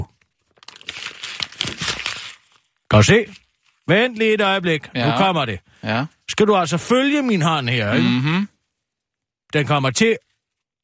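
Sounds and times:
ordinary sheet of paper being unfolded and crinkled: 0.1s - 3.9s
speech: 2.9s - 8.5s, 9.5s - 10.8s.

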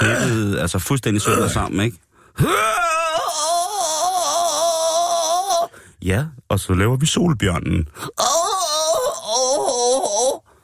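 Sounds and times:
person imitating loud moaning during yoga: 0.0s - 0.6s, 2.4s - 5.7s, 8.1s - 10.4s
speech: 0.6s - 3.6s, 6.0s - 8.3s.

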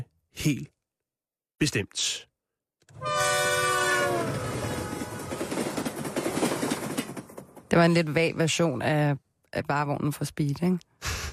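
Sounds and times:
speech: 0.4s - 0.8s, 1.6s - 2.3s, 2.9s - 3.4s, 7.7s - 11.2s
train horn blast: 2.9s - 5.5s
train wheels and cars rumbling past: 3.0s - 9.0s.

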